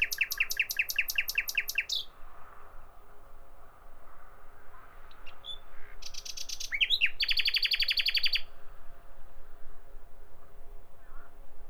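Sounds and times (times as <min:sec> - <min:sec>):
Common nightingale song with loud rapid even trill: 0:00.0 - 0:02.1, 0:05.3 - 0:08.5.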